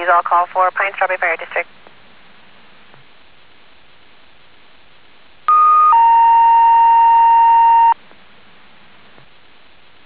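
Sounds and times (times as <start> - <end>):
speech: 0.0 - 1.8
faint static on a fire dispatch radio channel: 0.0 - 10.0
two-tone dispatch paging alert over a fire dispatch radio channel: 5.5 - 8.0.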